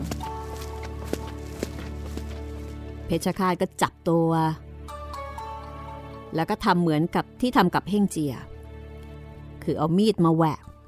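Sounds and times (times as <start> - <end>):
footsteps of a person walking toward an arena: 0.0 - 3.0
speech: 3.1 - 4.6, 6.3 - 8.5, 9.6 - 10.7.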